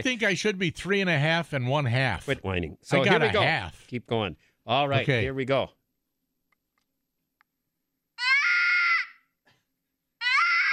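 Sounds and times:
speech: 0:00.0 - 0:05.8
rabbit screaming: 0:08.2 - 0:09.2, 0:10.2 - 0:10.7.

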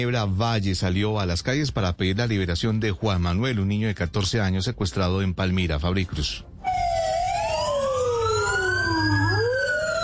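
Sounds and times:
speech: 0:00.0 - 0:06.5
fire truck siren wailing at night street march: 0:06.6 - 0:10.0.

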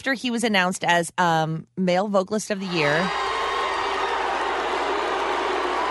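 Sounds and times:
speech: 0:00.0 - 0:03.3
large crowd yelling one long vowel: 0:02.6 - 0:05.9.

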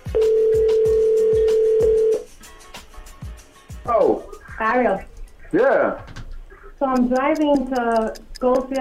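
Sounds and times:
telephone call ringback tone: 0:00.0 - 0:02.3
faint steady thumping beat: 0:00.0 - 0:08.7
speech: 0:04.8 - 0:06.1, 0:06.8 - 0:08.7.

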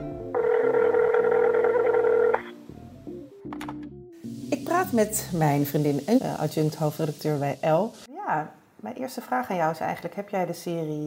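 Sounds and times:
telephone dial tone as a call is placed: 0:00.4 - 0:02.6
speech: 0:04.8 - 0:11.0.

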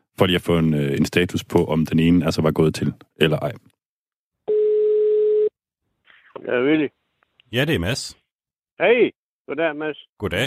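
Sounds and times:
speech: 0:00.2 - 0:03.7, 0:06.4 - 0:08.2, 0:08.8 - 0:10.4
telephone ringing tone of an outgoing call: 0:04.5 - 0:05.6.

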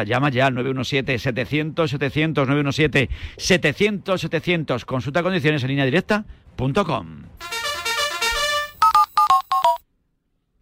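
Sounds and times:
speech: 0:00.0 - 0:07.6
telephone ringtone rising chiming melodic phrase: 0:07.4 - 0:09.8
short two-tone telephone ringtone beeps: 0:08.0 - 0:09.8.

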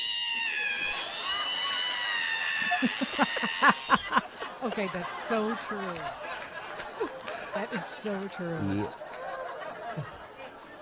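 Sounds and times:
voice imitating an ironing board opening squeak: 0:00.0 - 0:03.6
laughter: 0:00.4 - 0:10.8
speech: 0:02.8 - 0:04.0, 0:04.6 - 0:06.4, 0:07.0 - 0:09.0, 0:10.0 - 0:10.2.

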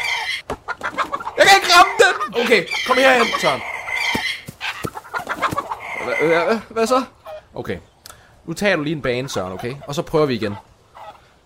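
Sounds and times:
turkey clucking and warbling: 0:00.0 - 0:11.4
speech: 0:01.6 - 0:03.7, 0:06.1 - 0:07.9, 0:08.5 - 0:10.7.

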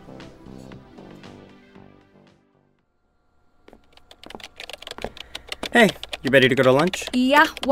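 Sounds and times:
typing on a computer keyboard: 0:03.9 - 0:07.7
speech: 0:05.7 - 0:07.7.

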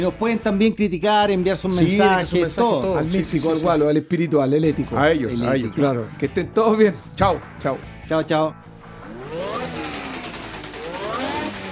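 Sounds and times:
speech: 0:00.0 - 0:08.7
Formula 1 racing car engine revving in Baku, Azerbaijan: 0:08.6 - 0:11.7.

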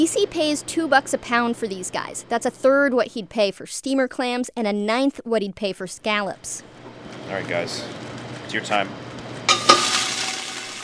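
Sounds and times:
speech: 0:00.0 - 0:09.0
crab shells clattering into a hot stock pot: 0:09.5 - 0:10.8.

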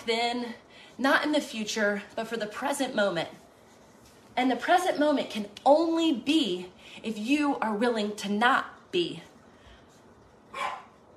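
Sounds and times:
speech: 0:00.0 - 0:03.4, 0:04.4 - 0:09.3
dog barking: 0:10.5 - 0:11.0.

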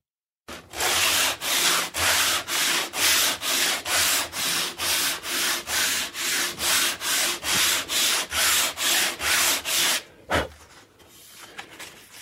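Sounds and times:
sandpaper of two grits rubbing back and forth on wood: 0:00.8 - 0:10.0.

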